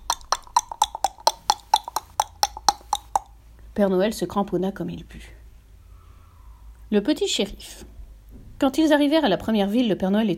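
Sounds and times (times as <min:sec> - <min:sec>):
hoofbeats of a galloping horse: 0:00.0 - 0:03.3
speech: 0:03.8 - 0:05.4, 0:06.9 - 0:08.0, 0:08.6 - 0:10.3.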